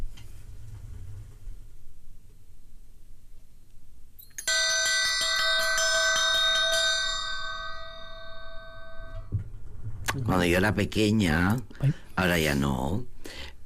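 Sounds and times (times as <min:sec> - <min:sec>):
quiet room noise: 0:00.0 - 0:13.6
bell ringing: 0:04.2 - 0:09.3
speech: 0:10.3 - 0:13.6.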